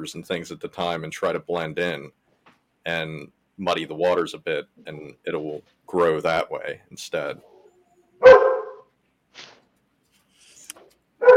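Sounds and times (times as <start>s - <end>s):
speech: 0.0s - 2.2s, 2.8s - 7.5s
dogs barking: 7.5s - 8.9s, 11.2s - 11.3s.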